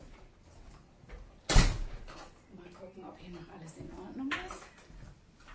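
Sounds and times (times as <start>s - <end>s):
door pushed shut with a solid thud: 1.5s - 2.0s
speech: 3.0s - 4.6s.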